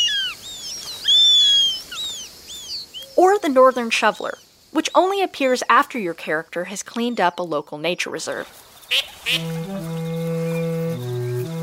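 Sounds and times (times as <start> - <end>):
Eurasian sparrowhawk whistled calls in a birdwatching video game: 0.0 - 4.4, 8.9 - 11.6
speech: 3.2 - 10.1.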